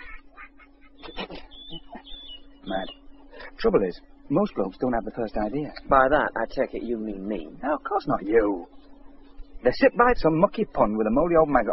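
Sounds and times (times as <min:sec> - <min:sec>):
woman imitating duck quacking: 0:00.0 - 0:02.2
faint steady hum: 0:00.0 - 0:11.7
speech: 0:03.6 - 0:08.8, 0:09.6 - 0:11.7.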